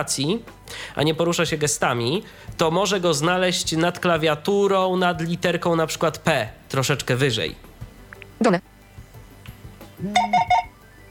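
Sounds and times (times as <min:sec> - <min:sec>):
speech: 0:00.0 - 0:07.7, 0:08.4 - 0:08.7, 0:10.0 - 0:10.4
smartphone notification chime: 0:10.1 - 0:10.8.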